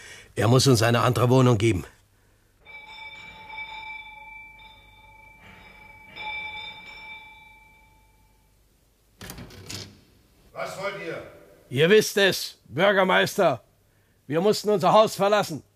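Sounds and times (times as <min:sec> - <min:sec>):
speech: 0:00.4 - 0:02.0, 0:11.7 - 0:13.7, 0:14.3 - 0:15.7
house door bell ringing: 0:02.6 - 0:08.6.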